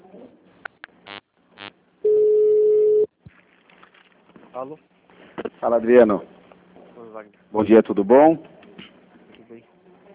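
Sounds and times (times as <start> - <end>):
telephone beeps and tones on an automated phone line: 2.1 - 3.1
speech: 4.6 - 4.9, 5.6 - 6.3, 7.2 - 8.5.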